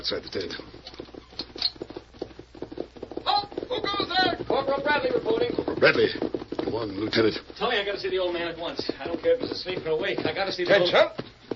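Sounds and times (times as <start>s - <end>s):
speech: 0.0s - 0.8s, 4.6s - 11.2s
horses approaching at a gallop before dawn: 0.0s - 11.5s.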